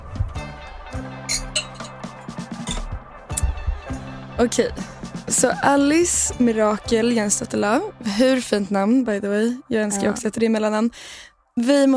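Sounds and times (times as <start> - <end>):
sparkling wine pouring: 1.3 - 2.0
glasses clinking: 1.3 - 3.0
speech: 4.4 - 11.9.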